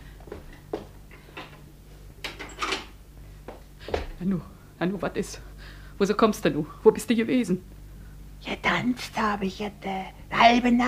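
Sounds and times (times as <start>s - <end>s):
door being closed and locked: 2.3s - 2.9s
speech: 4.2s - 7.7s, 8.4s - 10.8s.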